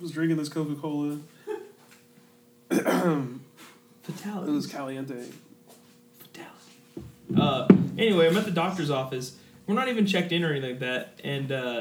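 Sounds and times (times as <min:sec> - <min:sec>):
speech: 0:00.0 - 0:01.4, 0:02.7 - 0:05.4, 0:07.3 - 0:11.7
person coughing after drinking soda: 0:02.7 - 0:03.4
rough voiced clearing of the throat: 0:02.7 - 0:04.3.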